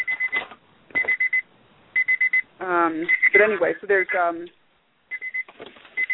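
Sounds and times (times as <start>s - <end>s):
high steady electronic beeping: 0.0s - 0.4s, 1.0s - 1.4s, 3.0s - 4.2s, 5.1s - 6.1s
speech: 2.6s - 4.6s.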